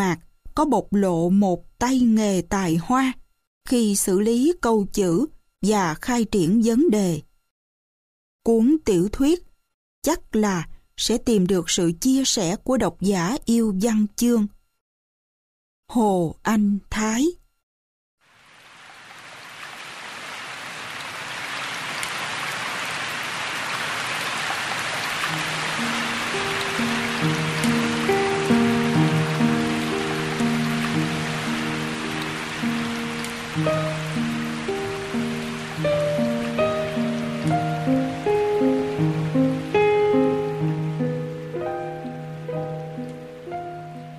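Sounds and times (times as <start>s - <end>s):
speech: 0.0s - 7.3s, 8.4s - 14.6s, 15.9s - 17.4s
soft steady rain: 18.2s - 44.1s
slow calm melody of sustained musical notes: 25.2s - 44.1s.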